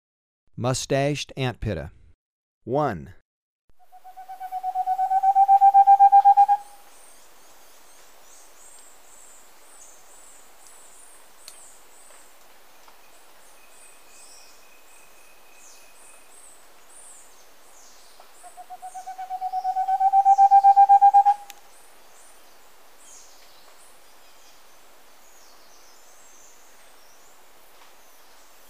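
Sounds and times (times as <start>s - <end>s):
Moustached Antpitta calling in Ecuador: 3.8s - 6.9s, 18.4s - 21.7s.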